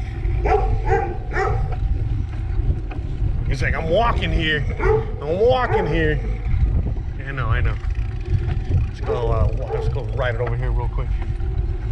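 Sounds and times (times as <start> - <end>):
low rumble of wind or road noise: 0.0 - 11.9
dog barking: 0.4 - 1.7, 4.8 - 6.0, 9.0 - 10.0
speech: 3.6 - 6.4, 7.3 - 7.9, 9.0 - 11.3.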